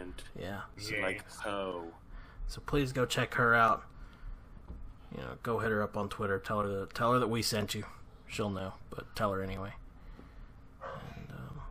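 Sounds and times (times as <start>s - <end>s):
speech: 0.1s - 3.9s, 5.1s - 9.8s
dogs barking and yelping: 10.8s - 11.2s.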